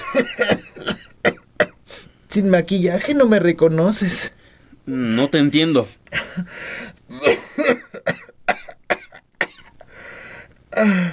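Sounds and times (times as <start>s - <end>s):
person with a cough and cold coughing: 0.0s - 1.8s, 7.1s - 9.9s
speech: 0.1s - 1.0s, 2.4s - 6.8s, 10.8s - 11.1s
raspy breaths of person with a cold: 4.3s - 4.8s, 6.1s - 7.1s, 9.8s - 11.1s.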